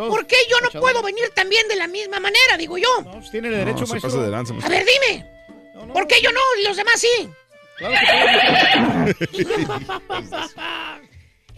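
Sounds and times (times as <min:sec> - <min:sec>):
speech: 0:00.0 - 0:10.9
horse whinny: 0:07.8 - 0:09.2
laughter: 0:08.0 - 0:11.1.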